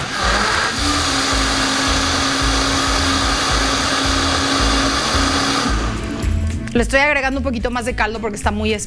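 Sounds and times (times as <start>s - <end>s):
kitchen blender puréeing thick mole negro paste: 0.0s - 6.6s
speech: 6.8s - 8.8s.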